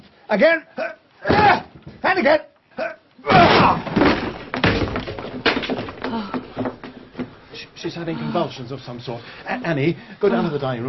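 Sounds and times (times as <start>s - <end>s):
speech: 0.3s - 1.0s, 2.1s - 4.0s, 6.1s - 6.4s, 7.8s - 10.8s
men battering at a locked wooden door: 3.3s - 6.2s.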